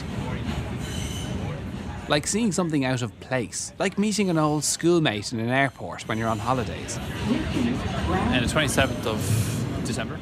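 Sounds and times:
subway train rumbling: 0:00.0 - 0:10.2
subway train wheels squealing: 0:00.8 - 0:01.5, 0:05.5 - 0:09.7
speech: 0:02.1 - 0:10.2.

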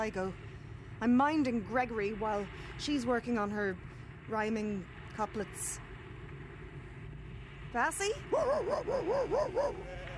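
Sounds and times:
speech: 0:00.0 - 0:05.9, 0:07.7 - 0:10.1
hairy two-year-old adolescent dog giving high whiny barks and yelps: 0:08.4 - 0:10.1.

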